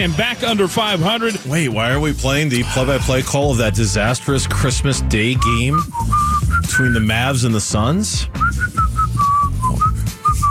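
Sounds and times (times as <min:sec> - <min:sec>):
speech: 0:00.0 - 0:08.8
person whistling a tune: 0:05.2 - 0:07.4, 0:08.3 - 0:10.4.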